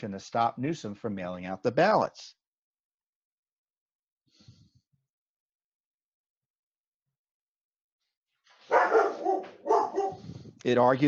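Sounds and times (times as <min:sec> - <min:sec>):
speech: 0:00.0 - 0:02.4, 0:10.6 - 0:11.0
dog barking: 0:08.7 - 0:10.2.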